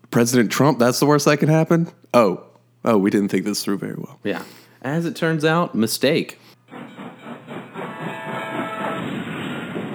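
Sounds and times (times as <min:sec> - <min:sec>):
speech: 0:00.2 - 0:06.6
train wreck sound effect with hissing, rumbling train noise and whistle-like tones: 0:06.7 - 0:09.9.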